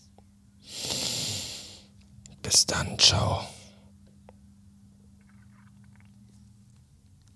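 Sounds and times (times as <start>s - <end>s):
speech: 2.5s - 3.6s
stomach rumbling and gurgling: 5.2s - 6.5s.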